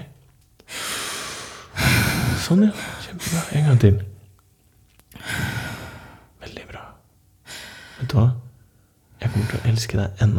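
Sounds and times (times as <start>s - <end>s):
slow deep belly breath: 0.7s - 3.6s, 5.2s - 6.4s, 7.4s - 8.1s, 9.2s - 9.8s
speech: 2.5s - 4.1s, 9.5s - 10.3s.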